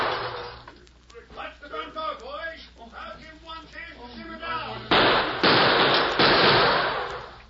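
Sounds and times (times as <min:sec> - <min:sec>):
gunfire from outlaws' guns as a radio drama sound effect: 0:04.9 - 0:07.3.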